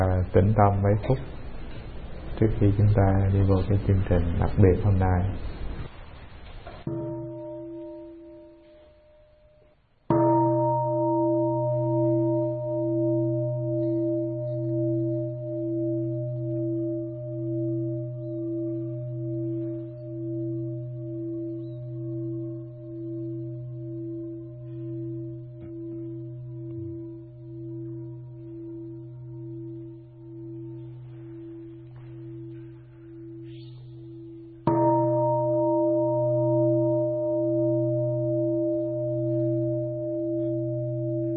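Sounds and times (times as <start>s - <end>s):
speech: 0.3s - 1.4s, 2.4s - 5.5s
meditation bell ringing at a Buddhist gathering: 6.8s - 41.3s.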